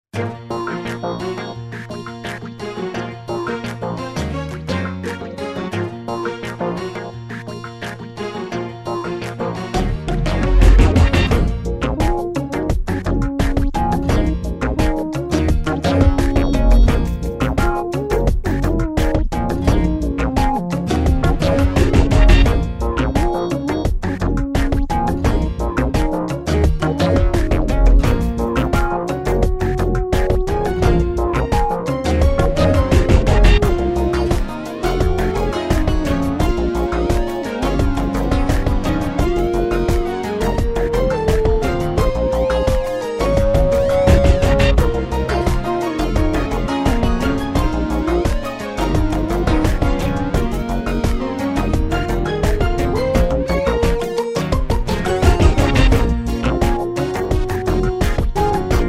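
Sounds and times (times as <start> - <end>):
jazz rock synth music: 0.2 - 58.8.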